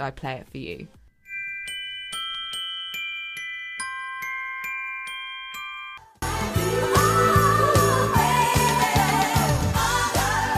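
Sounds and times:
speech: 0.0s - 1.0s
bright bell chimes in a Christmas pop song: 1.2s - 6.2s
upbeat Christmas pop song with pulsing beat and synthesizers: 6.1s - 10.5s.

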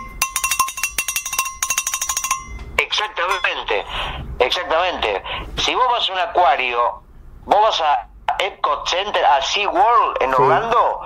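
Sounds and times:
rapid metallic clanging: 0.0s - 3.6s
speech: 3.0s - 11.0s.

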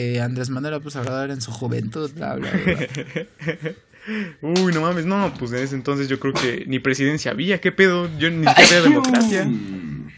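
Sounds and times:
speech: 0.0s - 9.9s
laughter: 2.3s - 4.0s
person sneezing: 8.5s - 9.5s.

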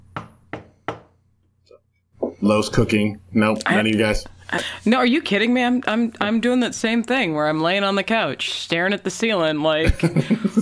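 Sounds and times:
firm resonant knocks on a door: 0.1s - 1.2s
speech: 2.4s - 10.6s
laughter: 9.7s - 10.6s.

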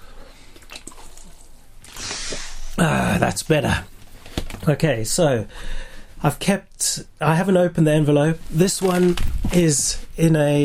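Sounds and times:
person sipping water: 0.5s - 2.8s
speech: 2.8s - 3.9s, 4.7s - 10.6s.

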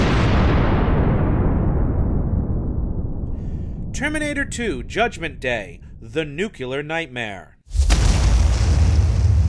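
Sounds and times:
tanker truck explosion: 0.0s - 4.9s, 7.7s - 9.4s
speech: 4.0s - 7.8s.

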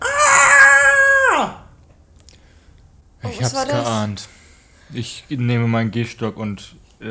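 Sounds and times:
voice imitating a woman's high-pitched scream: 0.0s - 1.7s
speech: 3.4s - 7.1s.

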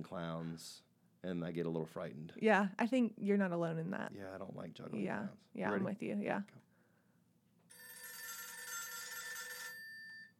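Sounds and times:
speech: 0.0s - 6.6s
low hum: 0.0s - 7.7s
old-fashioned telephone bell ringing: 7.7s - 10.3s.

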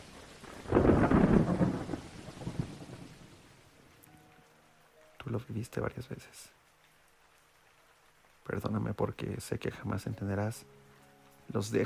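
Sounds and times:
deep roll of thunder: 0.0s - 3.4s
steady rain falling: 0.0s - 11.8s
speech: 5.4s - 6.6s, 8.5s - 10.8s, 11.5s - 11.8s.

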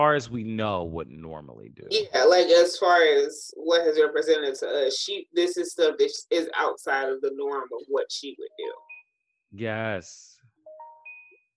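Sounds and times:
speech: 0.0s - 8.9s, 9.5s - 10.3s
delivery app phone notification chime with three rising electronic tones: 10.7s - 11.5s.

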